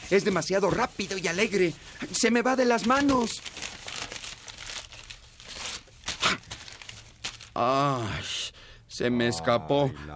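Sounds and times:
gift wrapping paper crinkling and rustling: 0.0 - 7.6
speech: 0.1 - 3.7, 7.6 - 8.4, 9.0 - 10.1.

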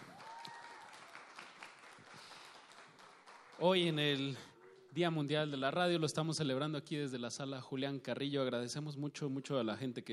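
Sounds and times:
audience applause: 0.0 - 5.0
speech: 3.6 - 10.1.

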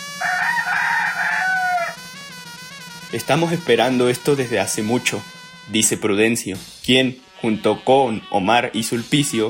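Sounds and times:
rooster crowing: 0.0 - 2.2
speech: 3.1 - 9.4.

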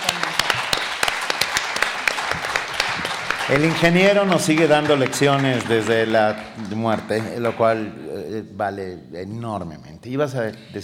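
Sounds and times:
small studio group clapping: 0.0 - 8.0
speech: 3.5 - 10.8.

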